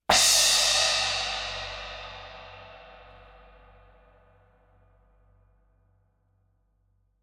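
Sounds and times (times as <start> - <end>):
10 inch dark unfinished splash crash cymbal struck with a mallet: 0.1 - 3.4.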